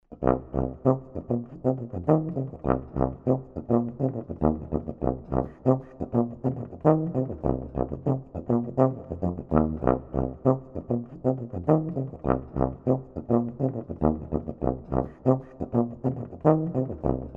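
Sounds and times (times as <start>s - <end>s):
funk tuba playing root, octave, seventh, minor third and ghost notes: 0.1s - 17.3s.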